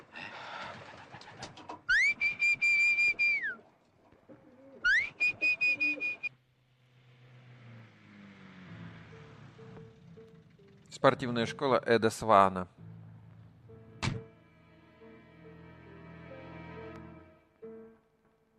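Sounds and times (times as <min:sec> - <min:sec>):
nervous pigeon cooing: 0:00.3 - 0:06.3
low steady rumble like an engine: 0:08.6 - 0:16.4
speech: 0:11.0 - 0:12.8.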